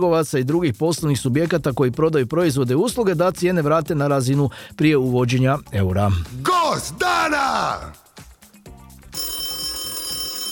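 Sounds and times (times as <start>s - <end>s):
speech: 0.0s - 8.0s
rhythmic musical backing: 0.0s - 9.8s
telephone ringing with a trilling bell: 9.1s - 10.5s.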